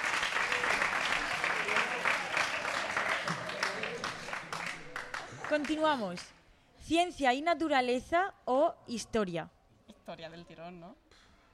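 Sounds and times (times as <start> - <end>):
small group clapping: 0.0 - 6.4
speech: 5.5 - 11.0.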